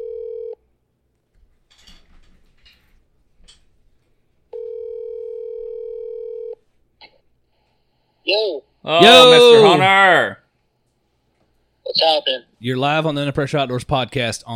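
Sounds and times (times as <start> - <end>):
telephone dial tone: 0.0 - 0.6, 4.6 - 6.6
speech: 8.3 - 10.4, 12.0 - 14.5.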